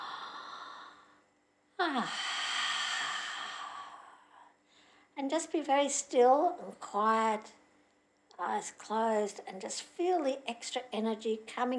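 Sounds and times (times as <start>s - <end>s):
deep breathing in and out: 0.0s - 1.2s, 1.9s - 5.1s
speech: 1.8s - 2.3s, 5.2s - 7.6s, 8.4s - 11.7s.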